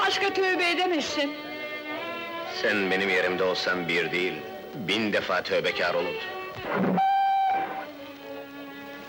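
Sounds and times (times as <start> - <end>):
speech: 0.1 - 1.5, 2.5 - 7.1
train whistle blasts as a train gets ready to leave: 7.0 - 7.9.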